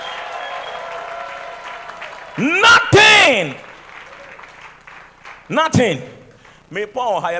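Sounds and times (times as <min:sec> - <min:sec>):
audience shouts of praise: 0:00.0 - 0:05.9
audience clapping as a clap offering: 0:00.0 - 0:07.3
speech: 0:02.4 - 0:03.6, 0:05.5 - 0:07.3.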